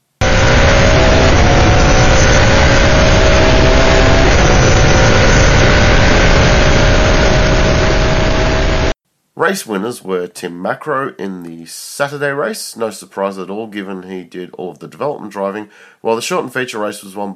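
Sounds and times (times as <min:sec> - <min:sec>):
S5000 single-seat racing car engine roaring: 0:00.2 - 0:09.0
speech: 0:09.4 - 0:17.3.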